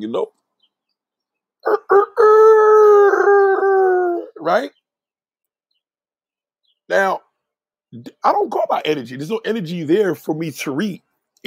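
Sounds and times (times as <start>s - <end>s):
speech: 0.0s - 0.4s, 4.4s - 4.8s, 6.9s - 7.2s, 7.9s - 11.4s
rooster crowing: 1.6s - 4.5s.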